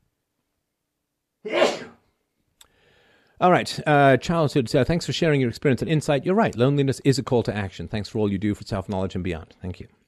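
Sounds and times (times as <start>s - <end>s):
speech: 1.4s - 1.7s, 3.4s - 10.0s
small sharp sneeze: 1.5s - 2.1s.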